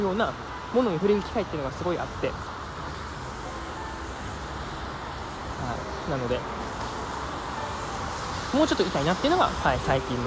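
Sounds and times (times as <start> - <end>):
speech: 0.0 - 2.5, 5.6 - 6.6, 8.5 - 10.2
loud car traffic passing outside: 0.0 - 10.2.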